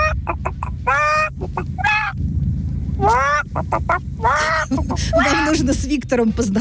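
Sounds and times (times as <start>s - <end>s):
person imitating a clucking hen: 0.0s - 2.2s, 3.0s - 5.5s
speech: 5.0s - 6.6s.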